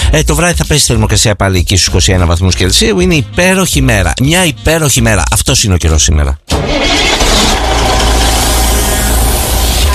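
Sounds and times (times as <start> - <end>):
speech: 0.1 - 6.5
car engine starting and revving sound effect: 6.5 - 9.9.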